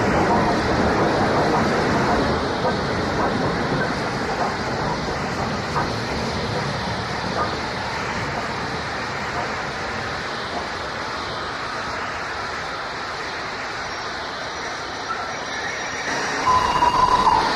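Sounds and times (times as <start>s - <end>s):
three-cylinder steam passenger train departing a station at night: 0.0s - 17.5s
short shrill steam train whistle: 15.1s - 17.5s.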